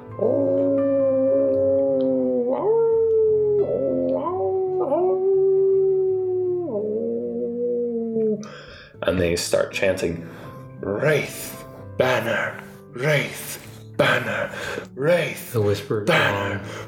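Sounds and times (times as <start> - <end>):
wolves howling: 0.0 - 8.5
speech: 9.3 - 16.8.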